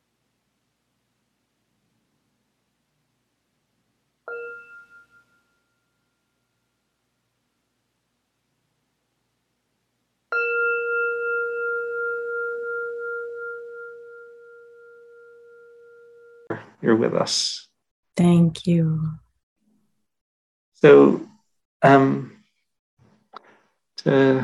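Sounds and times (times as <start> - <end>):
meditation bell struck to close a session: 4.3 - 6.6, 10.3 - 16.5
speech: 16.8 - 19.2, 20.8 - 22.3, 24.0 - 24.4.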